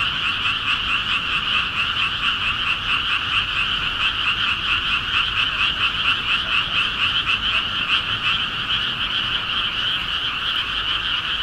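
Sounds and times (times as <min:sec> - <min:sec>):
frogs croaking in chorus on a midsummer night: 0:00.0 - 0:11.4.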